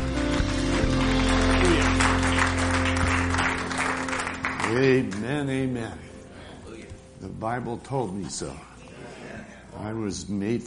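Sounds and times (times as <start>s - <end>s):
audience applauding: 0.0s - 5.4s
sustained organ-like musical drone: 0.0s - 8.0s
speech: 4.7s - 6.1s, 7.2s - 8.7s, 9.8s - 10.6s.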